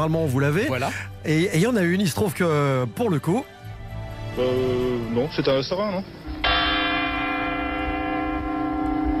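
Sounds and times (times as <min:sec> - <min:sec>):
speech: 0:00.0 - 0:03.6, 0:04.4 - 0:06.2
large church bell ringing: 0:05.6 - 0:09.1.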